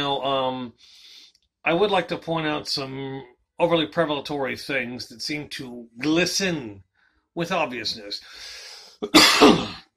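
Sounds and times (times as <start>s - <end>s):
speech: 0.0s - 9.8s
harsh raspy smoker's cough: 9.0s - 9.9s.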